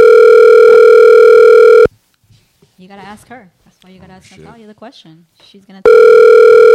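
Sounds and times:
electronic telephone ringback tone while placing a call: 0.0s - 1.9s, 5.8s - 6.7s
speech: 3.4s - 6.7s.

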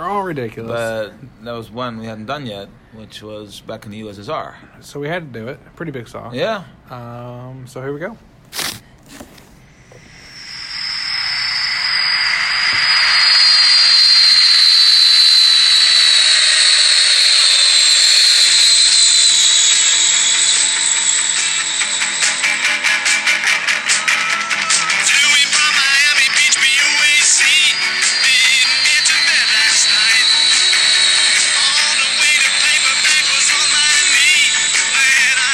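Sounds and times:
speech: 0.0s - 8.3s
BOAC jet plane from Miami Beach landing in Russia: 9.8s - 35.5s.

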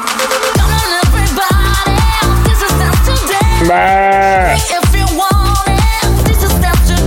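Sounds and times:
pounding dance track with steady thumping beat: 0.0s - 7.0s
sheep bleating: 3.4s - 4.7s.

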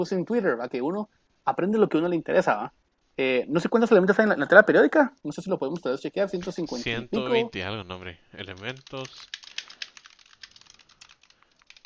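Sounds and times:
speech: 0.0s - 9.4s
typing on a computer keyboard: 8.5s - 11.8s.

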